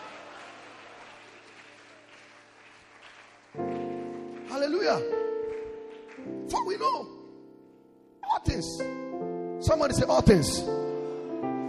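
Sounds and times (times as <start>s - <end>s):
congregation clapping hands: 0.0s - 7.2s, 10.4s - 11.6s
speech: 4.6s - 5.2s, 6.2s - 7.2s, 8.5s - 9.0s, 9.6s - 10.9s.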